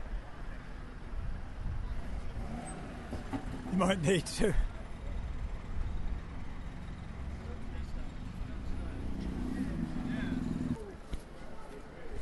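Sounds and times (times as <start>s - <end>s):
police trucks driving past on a street: 0.8s - 11.0s
speech: 3.3s - 4.7s.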